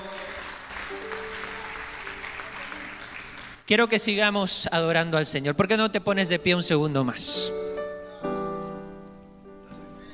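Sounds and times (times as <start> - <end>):
crowd applauding: 0.0 - 3.7
speech: 3.7 - 7.7.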